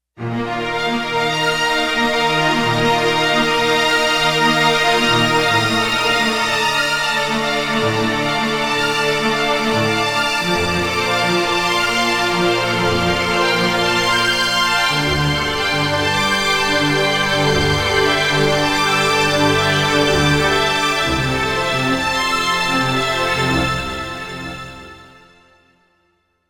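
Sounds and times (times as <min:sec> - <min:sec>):
digital synthesizer orchestral arpeggio: 0:00.2 - 0:25.3.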